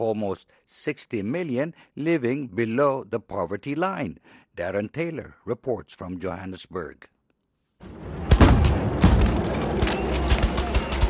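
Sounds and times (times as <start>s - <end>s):
speech: 0.0s - 7.2s
police firing rubber bullets at looters in Johannesburg: 8.0s - 11.0s.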